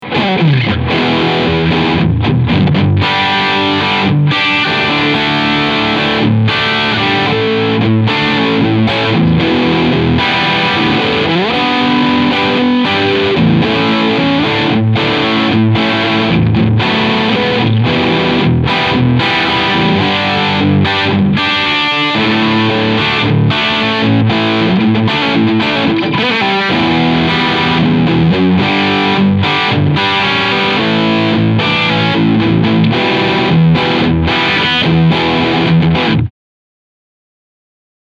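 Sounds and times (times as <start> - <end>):
Harley Benton BM 75 Trans Red riff on bridge pickup: 0.0 - 36.3.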